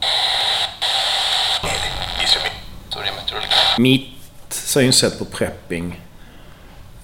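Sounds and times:
radio without preset channels hissing static while scanned across stations: 0:00.8 - 0:03.8
snatches of garbled radio broadcast sound: 0:01.5 - 0:03.8
speech: 0:03.8 - 0:06.1.

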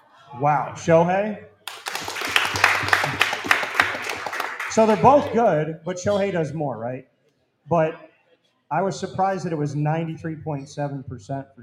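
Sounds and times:
speech: 0:00.3 - 0:01.5, 0:04.8 - 0:07.1, 0:07.7 - 0:08.1, 0:08.7 - 0:11.6
crowd clapping: 0:01.6 - 0:05.4.

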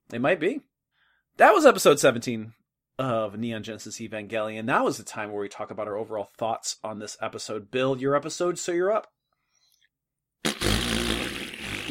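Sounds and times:
speech: 0:00.1 - 0:00.7, 0:01.4 - 0:09.2
man's mouth raspberry imitating a fart: 0:10.4 - 0:11.8.

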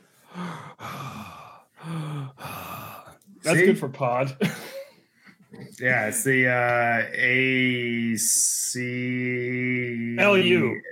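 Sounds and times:
man breathing heavily through a wall: 0:00.0 - 0:03.2
speech: 0:03.5 - 0:04.7, 0:05.8 - 0:10.9.

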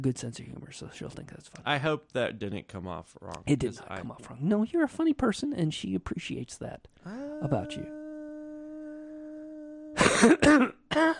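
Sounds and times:
speech: 0:00.0 - 0:08.0, 0:10.2 - 0:11.1
harsh coughs in a studio: 0:10.0 - 0:11.1.

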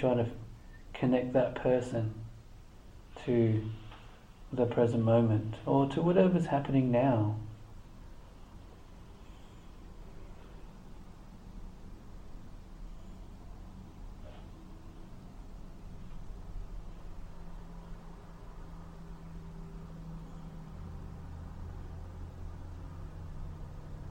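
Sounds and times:
speech: 0:00.0 - 0:02.3, 0:03.2 - 0:03.8, 0:04.5 - 0:07.5
low rumble of traffic: 0:02.3 - 0:24.1.

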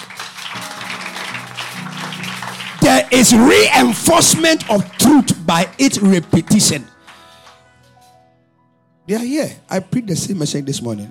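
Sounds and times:
audience clapping hands: 0:00.0 - 0:07.7
speech: 0:03.1 - 0:07.0, 0:09.1 - 0:11.0.

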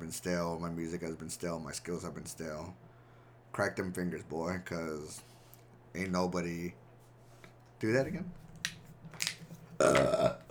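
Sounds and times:
speech: 0:00.1 - 0:02.9, 0:03.5 - 0:06.8, 0:07.8 - 0:08.8
quiet rustle: 0:05.0 - 0:09.8
loud burp: 0:09.8 - 0:10.5.

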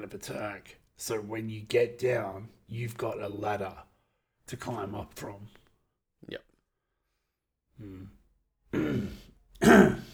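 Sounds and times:
speech: 0:00.0 - 0:03.9, 0:04.5 - 0:05.6, 0:06.2 - 0:06.5, 0:07.8 - 0:10.1
man clearing his throat of something stuck: 0:08.7 - 0:10.1.

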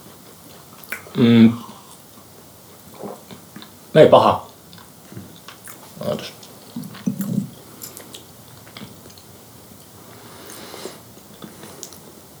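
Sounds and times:
chewing dried fruit with a raisin-like taste: 0:00.0 - 0:12.2
vocal murmur: 0:01.1 - 0:01.8, 0:06.0 - 0:07.6
speech: 0:01.2 - 0:01.7, 0:04.0 - 0:04.5.

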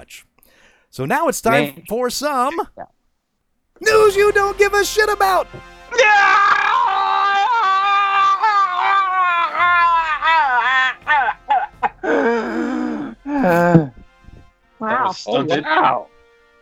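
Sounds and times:
speech: 0:00.1 - 0:00.3, 0:00.9 - 0:03.0, 0:03.8 - 0:06.6, 0:13.4 - 0:13.9, 0:14.9 - 0:16.1
strained breathing: 0:00.4 - 0:01.0, 0:09.1 - 0:14.9
laughter: 0:03.9 - 0:14.1, 0:14.8 - 0:16.1
person groaning and moaning: 0:12.0 - 0:14.0
person gasping for air: 0:12.0 - 0:14.4.

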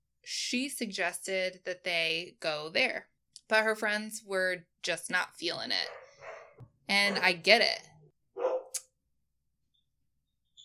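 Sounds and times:
speech: 0:00.3 - 0:06.0, 0:06.9 - 0:07.9
dog barking: 0:05.9 - 0:07.3, 0:08.4 - 0:08.8.

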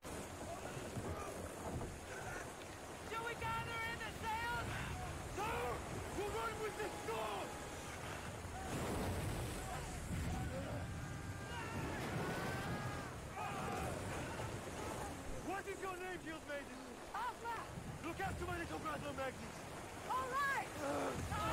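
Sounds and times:
heavy wind roaring in a storm at sea: 0:00.0 - 0:16.0, 0:17.0 - 0:21.5
waves pounding against a boat in a storm at sea: 0:00.0 - 0:21.5
voices talking and calling out: 0:00.1 - 0:21.5.

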